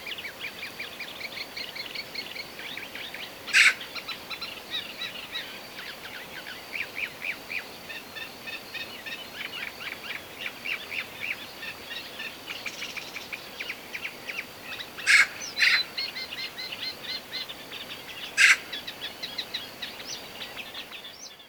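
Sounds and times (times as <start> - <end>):
small birds twittering: 0.1 - 21.4
Eurasian magpie Pica pica rasping chatter: 15.1 - 15.8, 18.4 - 18.6.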